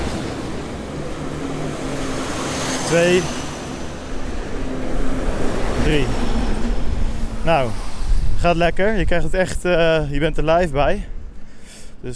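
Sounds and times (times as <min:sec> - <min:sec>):
trucks driving past: 0:00.0 - 0:09.2
speech: 0:02.9 - 0:03.4, 0:05.9 - 0:06.4, 0:07.4 - 0:11.1.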